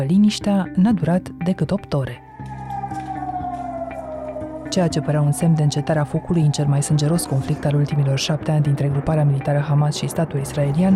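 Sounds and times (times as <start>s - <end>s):
speech: 0.0s - 2.2s, 4.7s - 10.9s
air raid warning siren in Israel wailing: 2.1s - 10.9s
faint rhythmic pulses: 2.2s - 10.9s.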